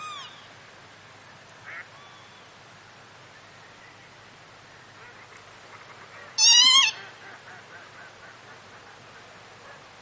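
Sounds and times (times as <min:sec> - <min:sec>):
steady background hiss: 0:00.0 - 0:10.0
Northern lapwing wheezy call: 0:06.4 - 0:07.2.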